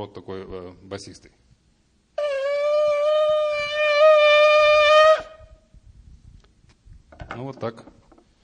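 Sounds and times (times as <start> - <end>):
speech: 0.0 - 1.5, 7.4 - 8.0
ram's horn shofar blast: 2.2 - 5.7.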